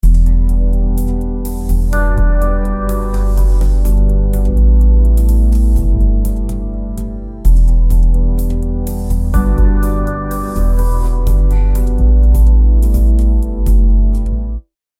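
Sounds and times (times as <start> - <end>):
lo-fi music with soft bass: 0.0 - 14.7.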